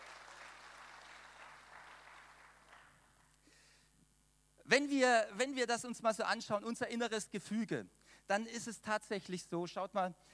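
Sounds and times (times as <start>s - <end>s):
audience applause: 0.0s - 3.1s
speech: 4.7s - 10.3s.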